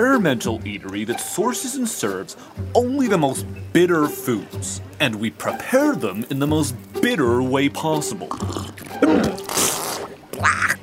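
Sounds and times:
speech: 0.1s - 9.4s
person sputtering cough: 9.0s - 9.4s
person spraying bitter coffee from mouth: 9.5s - 10.1s.

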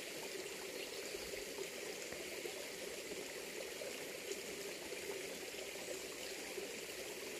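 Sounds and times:
forest stream in autumn flowing over small cascades: 0.0s - 7.3s.

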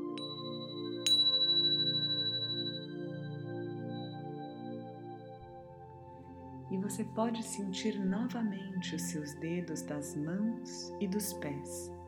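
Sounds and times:
soft bell chime: 0.2s - 5.4s
speech: 6.7s - 12.0s.

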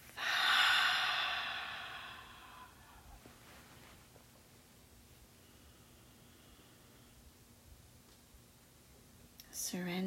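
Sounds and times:
long exhale through the mouth during a guided breathing exercise: 0.2s - 3.1s
speech: 9.6s - 10.0s.

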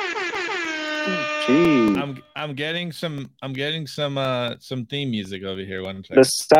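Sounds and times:
loud brassy air horn sound effect blaring: 0.0s - 2.4s
speech: 1.0s - 6.5s.

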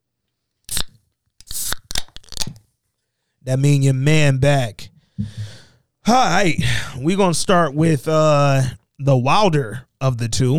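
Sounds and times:
drink can cracking open with fizzy hiss: 0.7s - 2.6s
speech: 3.4s - 10.5s.

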